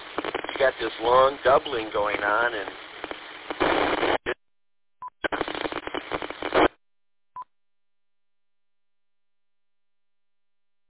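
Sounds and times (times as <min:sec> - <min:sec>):
radio repeater transmissions with band-limited hiss and static: 0:00.0 - 0:04.4, 0:05.2 - 0:06.7
speech: 0:00.6 - 0:02.8.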